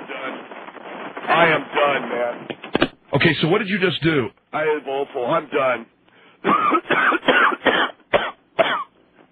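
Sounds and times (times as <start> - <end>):
speech: 1.3 - 7.9
harsh raspy coughing after smoking: 6.4 - 8.9.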